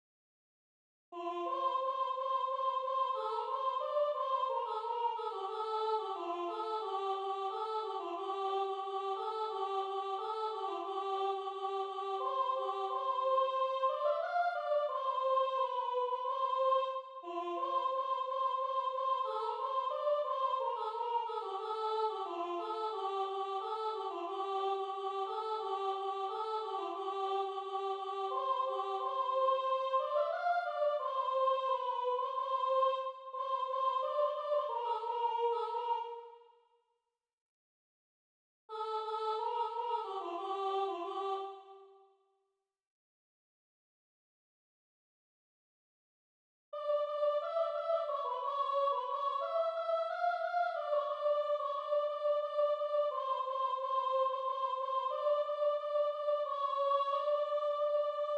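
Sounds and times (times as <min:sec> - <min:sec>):
soprano singing: 0:01.2 - 0:36.4, 0:38.7 - 0:41.9, 0:46.8 - 0:58.3.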